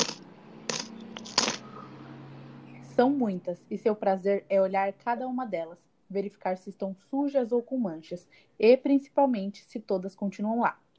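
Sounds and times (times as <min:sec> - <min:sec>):
gold coins clinking as they are counted in a bedroom: 0:00.0 - 0:01.7
speech: 0:03.0 - 0:10.8.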